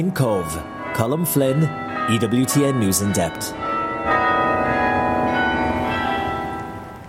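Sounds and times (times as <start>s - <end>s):
speech: 0.0s - 4.2s
large church bells pealing: 0.0s - 7.0s.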